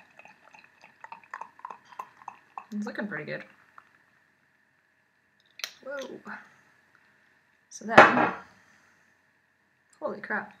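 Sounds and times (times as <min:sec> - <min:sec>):
beer poured from the tap into a glass: 0:00.0 - 0:04.2
crackling fizz and tiny popping beer bubbles: 0:00.0 - 0:04.5
speech: 0:02.7 - 0:03.6, 0:05.9 - 0:06.6, 0:07.7 - 0:08.5, 0:10.0 - 0:10.5.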